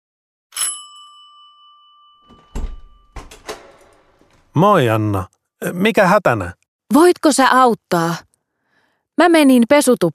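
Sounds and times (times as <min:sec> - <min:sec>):
doorbell giving one bright ding: 0:00.6 - 0:04.3
thumps and rattles of a door being opened: 0:02.3 - 0:04.6
speech: 0:04.6 - 0:08.3, 0:09.2 - 0:10.1.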